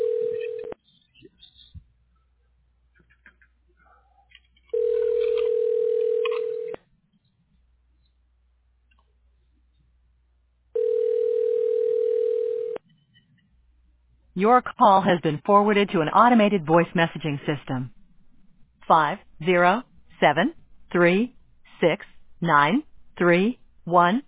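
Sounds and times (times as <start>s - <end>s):
steady low telephone dial tone: 0.0s - 0.8s, 4.7s - 6.8s, 10.8s - 12.8s
speech: 14.4s - 18.0s, 18.9s - 24.2s.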